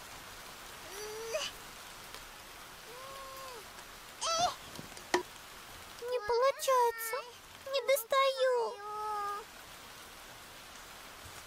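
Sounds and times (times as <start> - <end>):
steady rain falling: 0.0 - 11.4.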